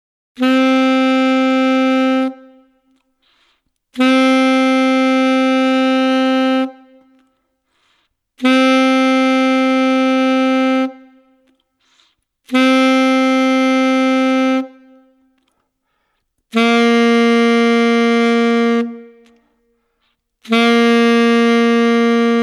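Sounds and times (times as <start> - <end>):
alto saxophone whole note: 0.4 - 7.2, 8.4 - 11.4, 12.5 - 15.2, 16.5 - 19.6, 20.4 - 22.4.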